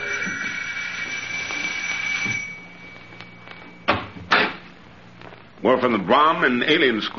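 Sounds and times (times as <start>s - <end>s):
buzzing doorbell ringing at a house: 0.0s - 4.3s
speech: 5.6s - 7.1s.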